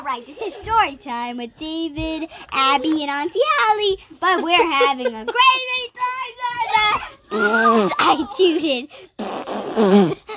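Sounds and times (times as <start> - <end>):
speech: 0.1 - 6.0, 6.7 - 10.2
young child vocalizing: 6.8 - 10.3
drawn-out wobbly fart noises: 7.3 - 8.2, 9.1 - 10.3.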